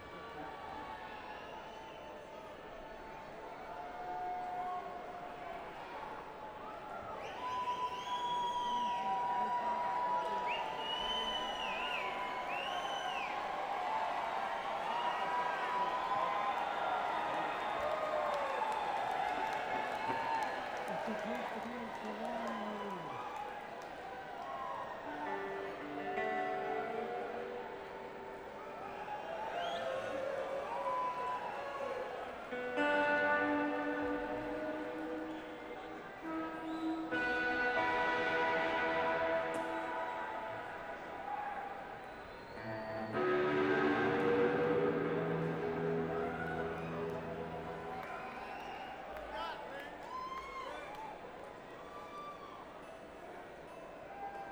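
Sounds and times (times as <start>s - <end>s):
crowd at a bluegrass event: 0.0s - 54.5s
laughter: 19.3s - 23.3s
bluegrass instruments tuning: 32.6s - 41.1s, 42.6s - 48.4s.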